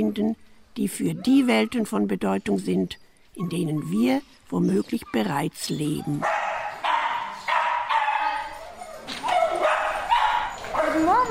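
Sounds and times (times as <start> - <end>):
speech: 0.0 - 6.4
dog barking: 6.1 - 8.6, 9.2 - 11.2.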